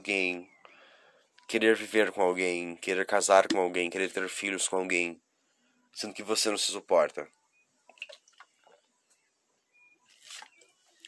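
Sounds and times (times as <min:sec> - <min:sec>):
speech: 0:00.1 - 0:00.5, 0:01.5 - 0:05.3, 0:06.0 - 0:07.4
sipping water: 0:07.9 - 0:08.8
liquid splash: 0:10.1 - 0:10.5.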